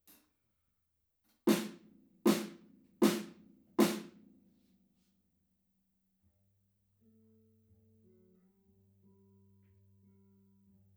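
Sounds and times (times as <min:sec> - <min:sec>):
drums: 0:01.4 - 0:04.2.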